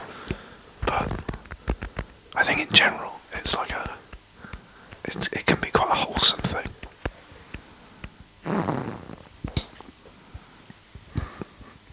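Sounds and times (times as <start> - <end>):
faint clicks and taps: 0.2 - 8.3
fart: 0.8 - 2.1, 8.4 - 9.8
speech: 2.4 - 3.9, 5.1 - 6.8.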